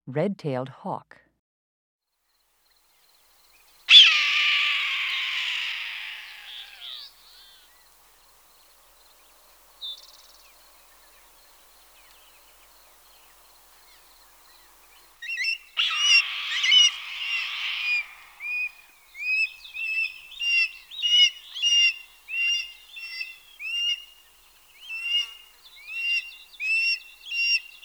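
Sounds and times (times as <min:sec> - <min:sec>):
red-tailed hawk calling: 0:03.9 - 0:07.8, 0:09.8 - 0:27.8.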